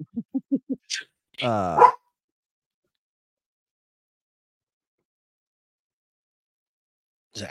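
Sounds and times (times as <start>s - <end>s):
speech: 1.4s - 1.9s
dog barking at shadows outside: 1.8s - 2.0s.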